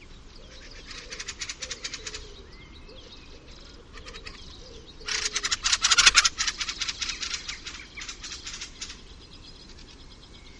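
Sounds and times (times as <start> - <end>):
fieldfare giving harsh dry chattering calls: 0.7 - 2.4, 3.8 - 9.2.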